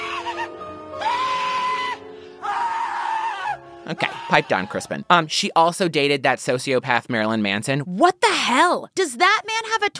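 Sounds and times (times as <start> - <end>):
person screaming shrilly: 0.0 - 4.3
speech: 3.9 - 9.9.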